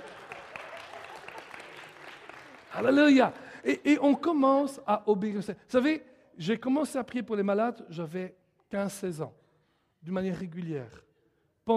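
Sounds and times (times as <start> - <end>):
congregation applauding during a church service: 0.0 - 3.9
speech: 2.8 - 9.4, 10.0 - 11.1.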